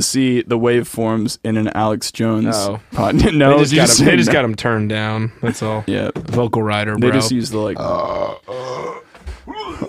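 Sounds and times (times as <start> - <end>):
speech: 0.0 - 9.0
long drawn-out burp: 7.8 - 9.8.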